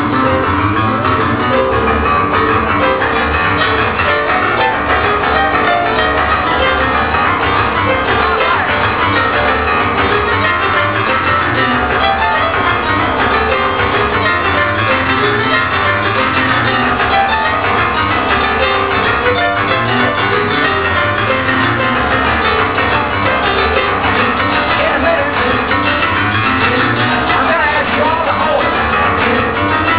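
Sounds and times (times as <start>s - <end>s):
blues festival crowd in Chicago Illinois: 0.0s - 29.9s.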